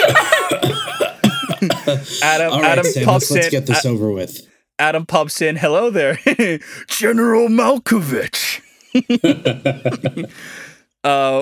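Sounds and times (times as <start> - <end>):
voice imitating a wheezing cough: 0.0 - 3.5
laughter: 0.0 - 3.8, 8.9 - 10.6
speech: 2.2 - 11.4.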